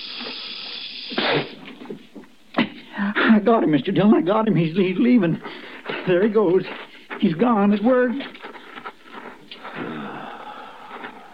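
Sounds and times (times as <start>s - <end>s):
snake hissing: 0.0s - 1.6s
speech: 3.4s - 8.3s.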